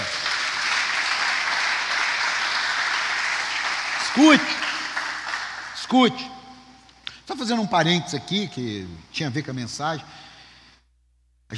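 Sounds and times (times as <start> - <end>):
audience applauding: 0.0 - 6.0
speech: 4.2 - 4.6, 5.9 - 6.4, 7.3 - 10.2.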